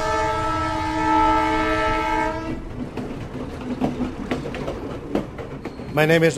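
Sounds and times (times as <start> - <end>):
tourist train horn departing for Machu Picchu in Peru: 0.0 - 2.7
tourist train wheels clattering and rumbling over track: 0.0 - 6.3
speech: 6.0 - 6.3.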